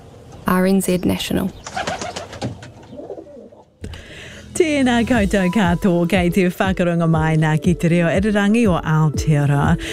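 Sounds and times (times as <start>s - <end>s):
speech: 0.5s - 1.9s, 4.6s - 9.9s
soft rustling or fluttering: 1.6s - 3.6s
rock pigeon cooing in low throaty rolling phrases: 1.7s - 3.8s.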